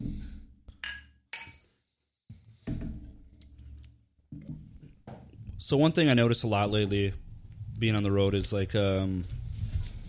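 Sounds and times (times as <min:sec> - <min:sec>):
glasses clinking together in a toast: 0:00.8 - 0:01.6
speech: 0:05.6 - 0:09.4.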